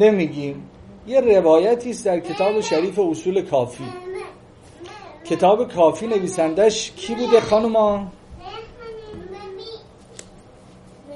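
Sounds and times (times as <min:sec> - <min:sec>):
speech: 0:00.0 - 0:04.0, 0:05.2 - 0:08.6
room noise: 0:00.0 - 0:11.1
young children chattering and calling out while moving around a room: 0:02.0 - 0:03.2, 0:03.8 - 0:10.0.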